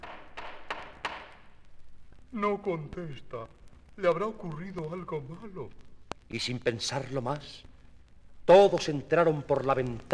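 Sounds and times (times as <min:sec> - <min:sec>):
knocking on a wooden door: 0:00.0 - 0:01.3
speech: 0:02.3 - 0:07.7, 0:08.5 - 0:10.1.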